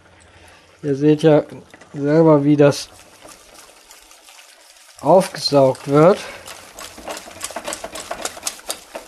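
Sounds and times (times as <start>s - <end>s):
speech: 0.8s - 3.0s, 5.0s - 6.4s
oil being poured into a finely mashed mixture: 1.6s - 9.0s.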